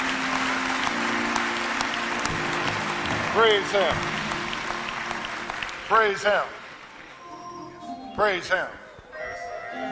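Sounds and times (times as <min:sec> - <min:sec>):
church audience applauding during a worship service: 0:00.0 - 0:07.2
speech: 0:03.4 - 0:04.1, 0:05.9 - 0:06.6, 0:08.2 - 0:08.8.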